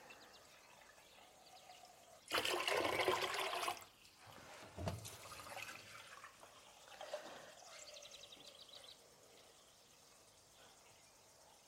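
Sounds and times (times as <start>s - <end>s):
water pouring into a cooking pot for fresh pasta: 2.3s - 4.0s, 5.1s - 7.1s.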